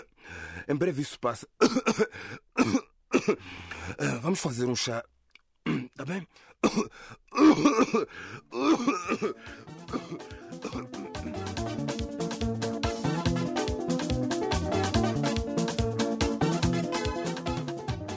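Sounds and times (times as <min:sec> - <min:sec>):
speech: 0:00.7 - 0:05.1, 0:06.0 - 0:11.5
throat clearing from a week-long cough: 0:01.6 - 0:04.1, 0:05.6 - 0:06.0, 0:06.6 - 0:11.2
person coughing from a week-long cough: 0:01.6 - 0:04.2, 0:05.6 - 0:11.4
steady rhythmic music: 0:08.7 - 0:18.1.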